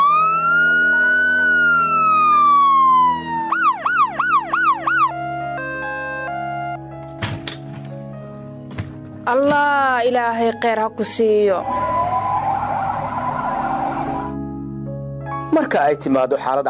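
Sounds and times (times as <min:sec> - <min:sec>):
Red Crescent emergency ambulance siren: 0:00.0 - 0:06.9, 0:11.6 - 0:14.6
speech: 0:09.4 - 0:12.0, 0:15.6 - 0:16.6.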